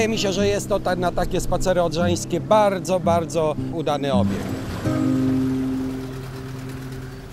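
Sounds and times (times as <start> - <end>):
speech: 0.0 - 5.2
small two-stroke boat engine droning: 4.2 - 7.3.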